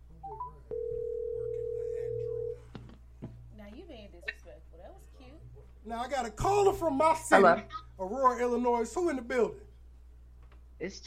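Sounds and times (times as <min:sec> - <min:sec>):
telephone dial tone: 0:00.7 - 0:02.6
speech: 0:05.9 - 0:09.6, 0:10.8 - 0:11.0.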